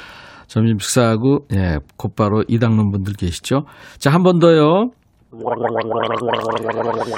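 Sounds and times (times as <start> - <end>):
speech: 0.5 - 7.1
gargling mouthwash in the throat: 5.3 - 7.1.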